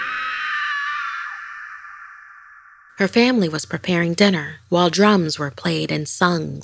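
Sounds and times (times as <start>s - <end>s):
woman screaming high-pitched and shrill: 0.0s - 2.9s
speech: 3.0s - 6.6s.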